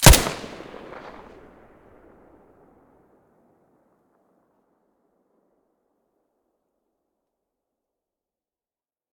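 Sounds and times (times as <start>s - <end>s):
silenced gunshot: 0.0s - 1.6s.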